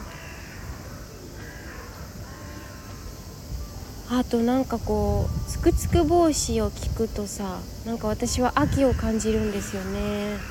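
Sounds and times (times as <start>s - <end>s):
crows cawing harshly: 0.0s - 3.6s, 8.5s - 10.4s
outdoor noise: 0.0s - 10.4s
speech: 4.1s - 10.4s.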